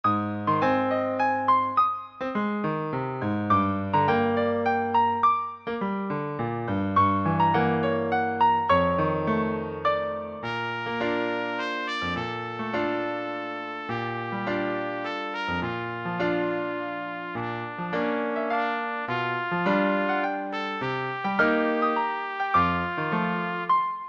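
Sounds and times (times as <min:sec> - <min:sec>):
piano accompaniment: 0:00.0 - 0:24.0
B-flat trumpet solo: 0:07.1 - 0:24.0.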